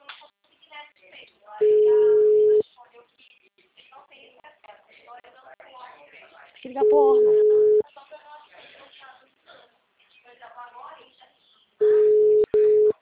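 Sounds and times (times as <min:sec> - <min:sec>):
steady mid-pitched phone tone: 0:01.6 - 0:02.6, 0:06.8 - 0:07.8, 0:11.8 - 0:13.0
speech: 0:06.7 - 0:07.4.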